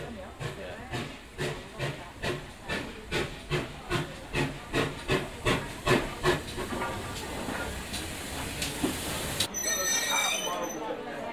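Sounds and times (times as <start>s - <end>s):
steam train chuffing as it arrives at a station: 0.0s - 10.8s
steam train wheels squealing as it slows to a stop: 9.4s - 10.9s.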